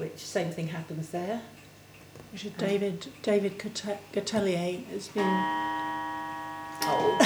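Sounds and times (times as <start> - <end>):
speech: 0.1 - 1.6, 2.2 - 5.7
clock chiming the hour: 5.2 - 7.2.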